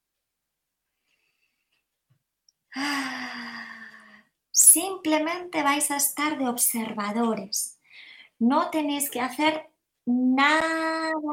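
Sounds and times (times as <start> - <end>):
speech: 2.8 - 3.2, 4.6 - 7.8, 8.4 - 11.3
deep sigh-like exhale during a guided breathing exercise: 2.8 - 4.3.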